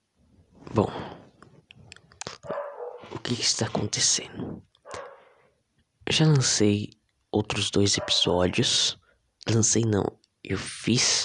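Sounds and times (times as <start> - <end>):
speech: 0.7 - 1.1, 3.3 - 4.7, 6.1 - 11.2
dog barking: 2.4 - 3.2, 4.9 - 5.3, 7.9 - 8.4.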